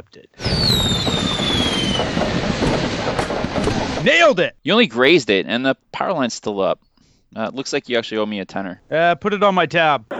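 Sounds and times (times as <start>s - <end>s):
speech: 0.0s - 1.1s, 4.0s - 10.1s
Roman candle firework being shot with hissing fizz and falling whistle: 0.4s - 4.4s.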